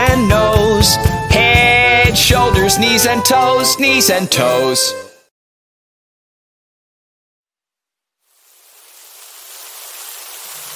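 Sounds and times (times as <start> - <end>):
speech: 0.2 - 1.1, 2.3 - 5.1
rain falling: 8.3 - 10.7.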